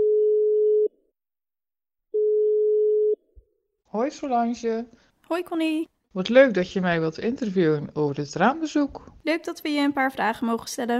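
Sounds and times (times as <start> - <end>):
low-pitched telephone ringing tone: 0.0 - 0.9, 2.2 - 3.2
speech: 3.9 - 10.9.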